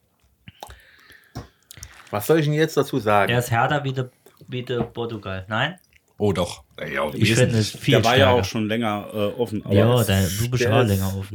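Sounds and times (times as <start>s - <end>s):
person sipping wine: 0.2s - 2.2s
speech: 2.1s - 11.3s.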